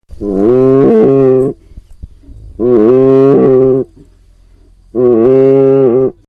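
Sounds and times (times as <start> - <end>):
cow: 0.2 - 1.6, 2.2 - 4.0, 4.9 - 6.2.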